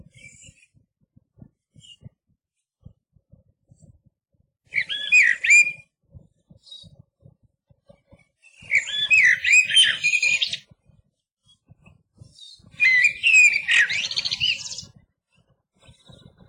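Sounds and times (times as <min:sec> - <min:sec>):
Eurasian blackbird song with mellow whistled phrases and scratchy twitters: 0:04.7 - 0:05.8, 0:08.5 - 0:10.6, 0:12.3 - 0:14.9.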